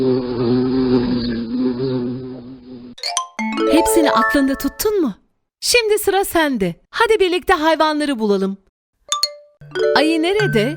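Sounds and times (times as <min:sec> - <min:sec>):
bee buzzing: 0:00.0 - 0:03.0
speech: 0:04.2 - 0:08.6, 0:09.8 - 0:10.7.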